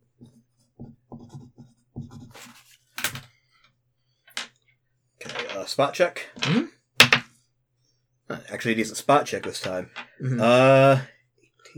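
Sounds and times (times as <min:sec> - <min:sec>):
handwriting scratching out a quick note: 0:00.2 - 0:03.2
speech: 0:05.6 - 0:06.8, 0:08.5 - 0:11.1.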